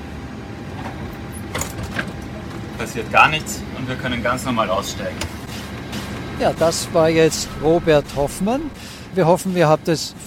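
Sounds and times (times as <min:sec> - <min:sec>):
steady low rumble of aircraft cabin hum: 0:00.0 - 0:10.2
aircraft cabin door opened with mechanical clunks: 0:00.8 - 0:02.8, 0:05.1 - 0:06.3
speech: 0:02.8 - 0:05.6, 0:06.4 - 0:10.2.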